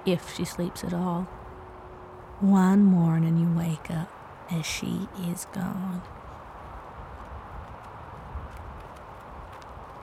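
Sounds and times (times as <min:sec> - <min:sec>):
speech: 0:00.0 - 0:01.4, 0:02.4 - 0:06.2
low rumble of outdoor noise: 0:00.0 - 0:10.0
horse hooves clip-clopping along a path at a walking pace: 0:06.1 - 0:10.0.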